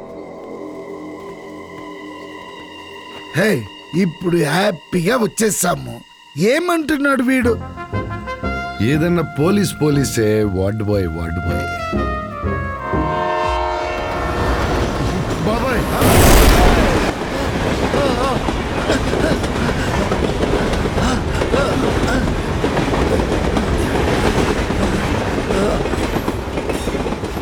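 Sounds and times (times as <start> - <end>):
speech: 3.3 - 7.8, 8.8 - 12.1
horn-like tone: 11.3 - 16.2
train passing on rails: 11.7 - 27.4.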